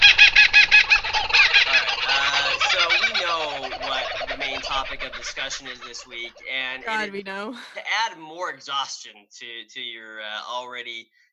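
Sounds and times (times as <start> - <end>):
rapid repeated recorded bird calls: 0.0 - 6.9
laughter: 1.8 - 11.0
speech: 4.9 - 11.2.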